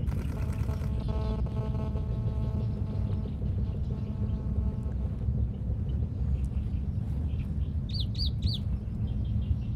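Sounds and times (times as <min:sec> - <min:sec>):
low rumble: 0:00.0 - 0:09.7
Plain-tailed warbler Seicercus soror song: 0:02.1 - 0:09.7.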